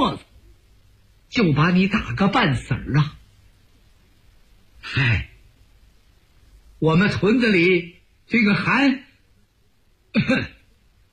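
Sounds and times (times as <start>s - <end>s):
speech: 1.3s - 3.2s, 4.8s - 5.3s, 6.8s - 9.1s, 10.1s - 10.6s
person coughing: 10.1s - 10.6s.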